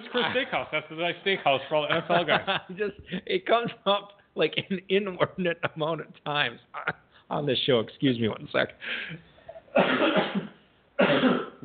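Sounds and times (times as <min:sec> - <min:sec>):
laughter: 0:00.0 - 0:06.2
speech: 0:00.1 - 0:11.6
person coughing: 0:09.7 - 0:11.6.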